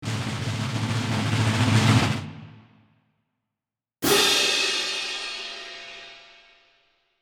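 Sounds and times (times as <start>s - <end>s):
drum rolls: 0.0s - 2.7s
cymbal crash: 4.0s - 6.7s.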